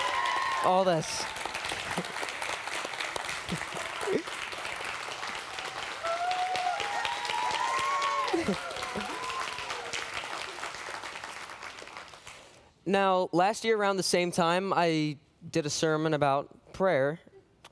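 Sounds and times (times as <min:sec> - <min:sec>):
whoops and cheers: 0:00.0 - 0:01.4, 0:05.6 - 0:10.2
room full of people applauding: 0:00.0 - 0:12.6
speech: 0:00.6 - 0:02.2, 0:03.5 - 0:04.4, 0:08.4 - 0:09.0, 0:12.9 - 0:17.3.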